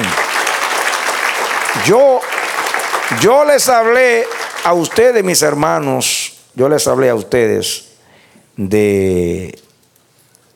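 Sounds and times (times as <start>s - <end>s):
congregation applauding in a church: 0.0s - 5.6s
speech: 1.8s - 2.3s, 3.1s - 7.9s, 8.6s - 9.6s.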